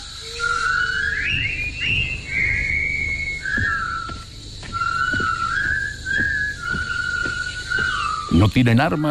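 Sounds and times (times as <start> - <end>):
group of soldiers whistling a military march in unison: 0.0 - 9.1
tramp of marching feet: 1.3 - 8.4
speech: 8.4 - 9.1.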